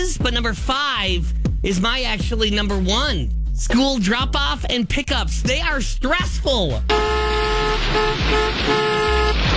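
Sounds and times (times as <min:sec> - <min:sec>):
speech: 0:00.0 - 0:08.8
traffic rumble at a school drop-off: 0:01.4 - 0:09.5
car horns honking at a school drop-off: 0:06.9 - 0:09.5.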